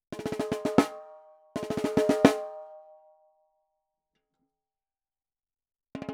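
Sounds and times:
snare drum recorded with a t.bone SC140 microphone: 0.1 - 1.0, 1.6 - 2.6.

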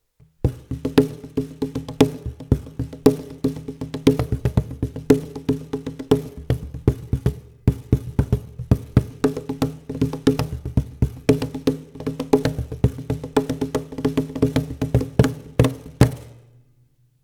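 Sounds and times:
Meinl Cajon CAJ1WN-M with carpet in half position: 0.2 - 16.5.

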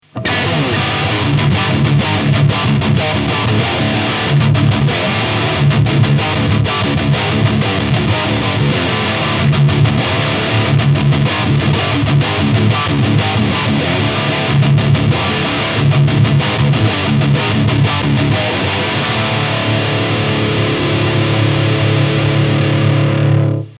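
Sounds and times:
Gibson Les Paul Standard 60s Faded electric guitar with high gain: 0.0 - 23.7.

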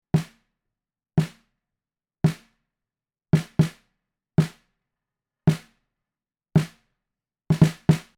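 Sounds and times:
snare drum recorded with Sennheiser MKH40: 0.2 - 0.4, 1.2 - 1.4, 2.3 - 2.5, 3.4 - 3.8, 4.4 - 4.6, 5.5 - 5.7, 6.6 - 6.8, 7.5 - 8.1.

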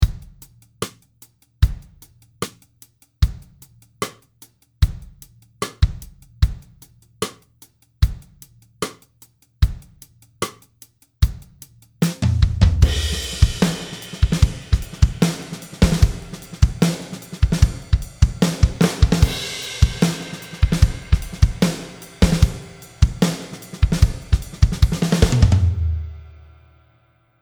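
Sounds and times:
snare drum with reverb: 0.0 - 1.0, 4.8 - 7.4, 11.2 - 26.5.

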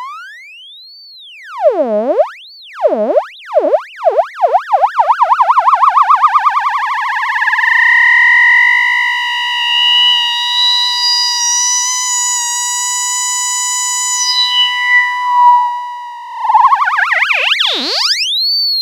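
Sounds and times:
audio-rate LFO synthesizer tone: 1.3 - 10.7, 14.1 - 18.3.

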